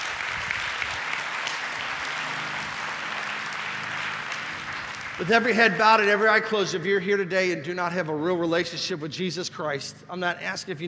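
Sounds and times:
crowd applauding: 0.0 - 6.7
speech: 5.2 - 10.8.

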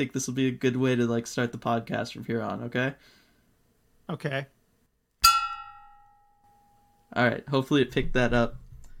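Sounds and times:
speech: 0.0 - 3.2, 4.1 - 4.6, 7.1 - 8.6
single bell struck with a sharp metallic clang: 5.2 - 7.1.

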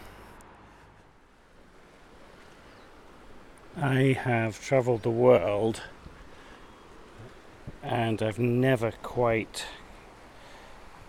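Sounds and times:
ocean surf washing against the coast at Maiden's Cove: 0.0 - 11.0
speech: 3.8 - 6.0, 7.8 - 9.8.

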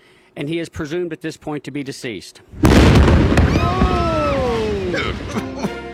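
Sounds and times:
speech: 0.4 - 4.2, 4.9 - 5.7
crackling debris: 2.6 - 5.3
loud house explosion rumbling and roaring: 2.6 - 5.3.

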